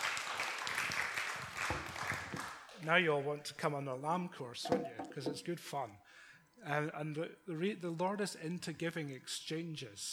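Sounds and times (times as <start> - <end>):
audience applause at a religious talk: 0.0 - 2.6
speech: 2.8 - 10.1.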